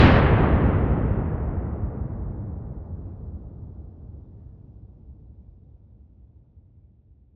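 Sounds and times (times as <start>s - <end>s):
distant dynamite explosion: 0.0s - 4.0s.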